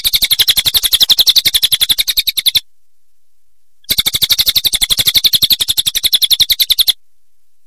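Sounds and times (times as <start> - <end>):
songbird giving a fast high buzzy trill: 0.0 - 2.6, 3.8 - 7.0.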